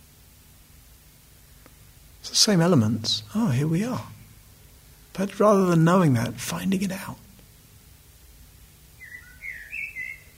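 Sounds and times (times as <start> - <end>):
low steady hum: 0.0 - 10.3
speech: 2.2 - 4.2, 5.2 - 7.2
bird singing bright whistled phrases: 8.9 - 10.3.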